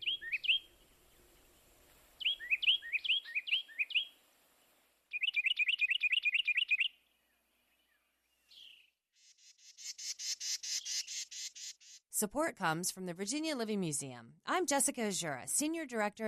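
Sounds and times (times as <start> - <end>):
wren singing loud piercing phrases: 0.0 - 0.8, 2.2 - 4.1, 5.1 - 7.0, 9.5 - 12.0
speech: 12.2 - 16.2.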